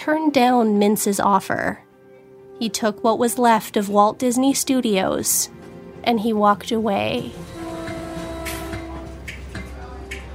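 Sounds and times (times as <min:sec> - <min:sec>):
speech: 0:00.0 - 0:01.9, 0:02.6 - 0:07.5
train heading home from New York rumbling on rails: 0:07.3 - 0:09.3.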